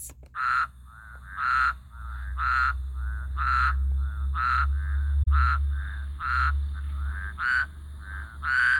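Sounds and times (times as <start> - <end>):
great basin spadefoot toad calling: 0.2 - 8.7.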